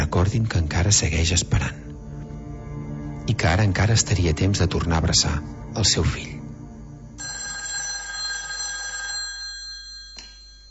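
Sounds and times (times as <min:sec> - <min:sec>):
speech: 0:00.1 - 0:01.8, 0:03.3 - 0:06.4
telephone ringing with an electronic trill: 0:07.2 - 0:10.6.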